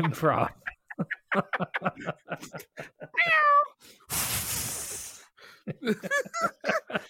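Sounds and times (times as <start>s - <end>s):
people chatting: 0.0s - 0.6s
laughter: 0.0s - 3.2s, 5.6s - 7.0s
speech: 0.0s - 4.8s, 5.6s - 7.0s
loud rushing hiss: 4.1s - 5.3s.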